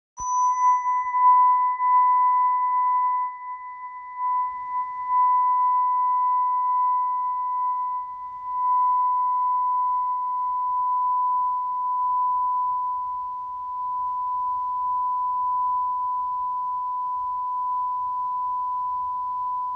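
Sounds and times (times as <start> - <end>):
aluminium therapeutic tuning fork tone: 0.2 - 19.7.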